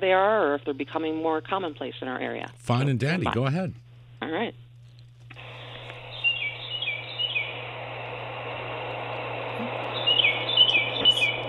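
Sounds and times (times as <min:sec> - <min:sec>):
speech: 0:00.0 - 0:04.6
low hum: 0:00.0 - 0:11.4
steady broad hiss: 0:05.3 - 0:11.4
tufted titmouse two-note whistled song played back by phone: 0:10.0 - 0:11.4.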